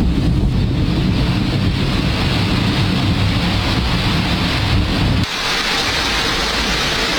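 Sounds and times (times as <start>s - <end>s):
low rumble: 0.0s - 5.3s
heavy rain pouring onto flooded city streets in Istanbul: 0.4s - 7.1s.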